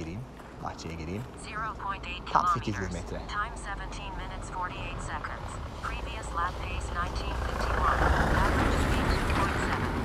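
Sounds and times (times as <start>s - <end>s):
speech: 0.0s - 9.3s
vehicle passing on narrow village road: 3.7s - 10.0s.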